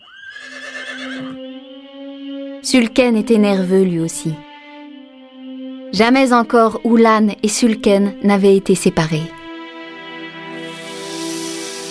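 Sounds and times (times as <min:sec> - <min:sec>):
horse whinnying: 0:00.0 - 0:01.4
speech: 0:02.6 - 0:04.5, 0:06.0 - 0:09.4.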